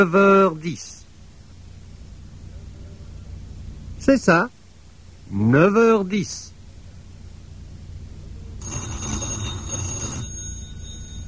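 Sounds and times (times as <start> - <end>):
speech: 0.0 - 1.0, 4.0 - 4.6, 5.3 - 6.5
telephone bell ringing: 8.6 - 11.2.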